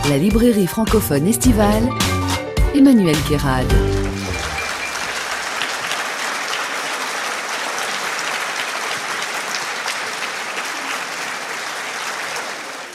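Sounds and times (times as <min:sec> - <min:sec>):
speech: 0:00.1 - 0:02.1, 0:02.7 - 0:04.0
large audience applauding in an opera house: 0:03.6 - 0:12.9.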